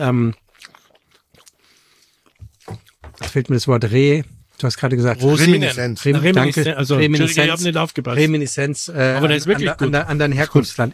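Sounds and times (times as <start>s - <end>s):
speech: 0.0s - 0.4s, 3.3s - 10.9s
person chewing Kaiserschmarrn with vanilla ice cream: 0.3s - 3.0s.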